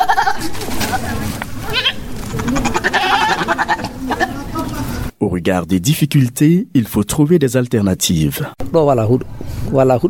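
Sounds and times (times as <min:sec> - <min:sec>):
goats bleating near cattle: 0:00.0 - 0:04.6
shuffling animals: 0:00.0 - 0:05.1
speech: 0:05.4 - 0:10.0.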